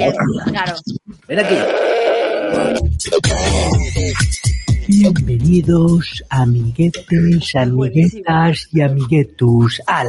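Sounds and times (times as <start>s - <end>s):
speech: 0.1s - 10.0s
goat bleating: 1.3s - 2.6s.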